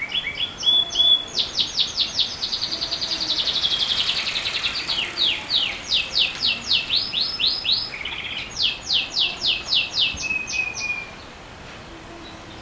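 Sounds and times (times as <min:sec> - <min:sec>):
unidentified bird song of high rapidly repeated down-slurred notes: 0:00.3 - 0:11.2.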